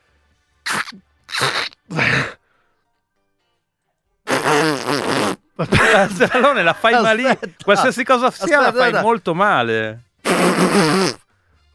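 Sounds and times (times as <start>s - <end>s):
person imitating a kazoo with their mouth: 0.6s - 2.4s, 4.3s - 5.5s, 10.2s - 11.3s
speech: 0.9s - 1.6s, 5.6s - 11.2s
laughter: 5.6s - 9.2s.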